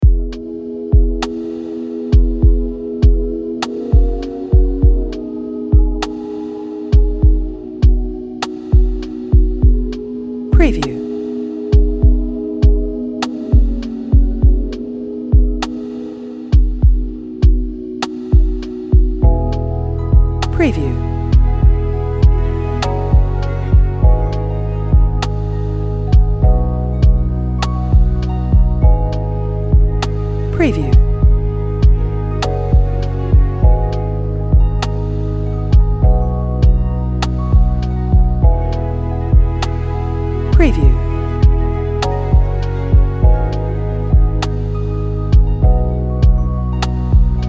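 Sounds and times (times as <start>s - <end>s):
chilling calm lo-fi drum beat music: 0.0s - 39.8s, 40.5s - 47.4s.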